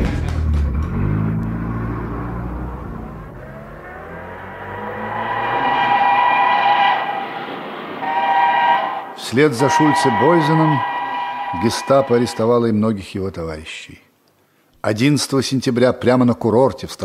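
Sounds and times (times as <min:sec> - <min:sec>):
car engine revving as the vehicle pulls away and speeds off: 0:00.0 - 0:12.2
speech: 0:09.3 - 0:10.9, 0:11.5 - 0:14.0, 0:14.8 - 0:17.0.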